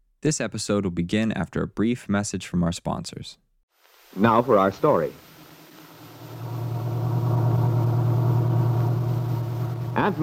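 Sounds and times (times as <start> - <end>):
speech: 0.2 - 3.5, 4.2 - 5.3, 10.0 - 10.2
small pickup truck engine droning as it drives: 6.4 - 10.1.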